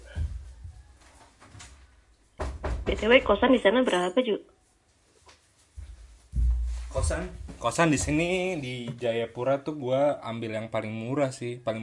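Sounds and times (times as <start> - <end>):
shuffling: 0.0 - 9.1
room door knock and rattle: 2.4 - 3.1
speech: 2.9 - 4.6, 7.0 - 11.8.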